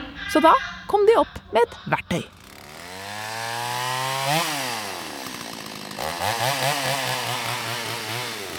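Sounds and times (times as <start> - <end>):
speech: 0.3 - 2.4
chainsaw engine revving: 2.3 - 8.5.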